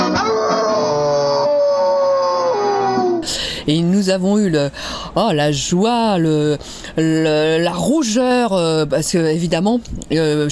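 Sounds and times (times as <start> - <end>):
wolves howling: 0.1 - 3.2
speech: 3.7 - 10.4.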